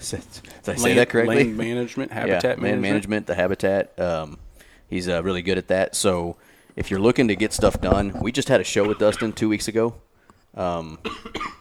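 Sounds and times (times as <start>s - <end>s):
speech: 0.0s - 11.5s
person coughing: 8.8s - 9.4s, 11.0s - 11.5s.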